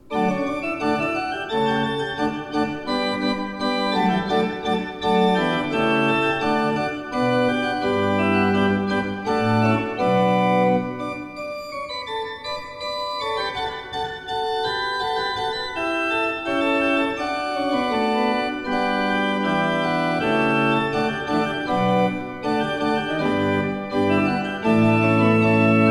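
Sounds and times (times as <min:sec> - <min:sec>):
organ: 0:00.0 - 0:25.8.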